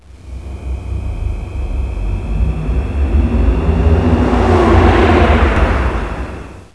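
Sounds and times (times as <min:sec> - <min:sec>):
fly by: 0:00.0 - 0:06.7.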